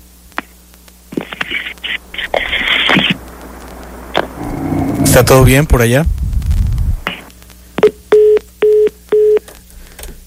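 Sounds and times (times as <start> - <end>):
brief low rumble: 2.0 - 7.1
speech: 5.1 - 6.2
telephone line beeps as a call drops: 7.8 - 9.5.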